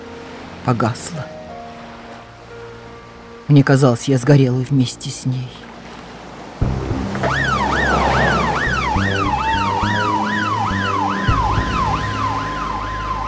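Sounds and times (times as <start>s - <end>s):
speech: 0.7s - 1.4s, 3.5s - 5.7s
engine rumble: 6.1s - 13.2s
road traffic: 6.1s - 13.2s
ambulance siren wailing in rising-and-falling yelp: 7.0s - 13.2s.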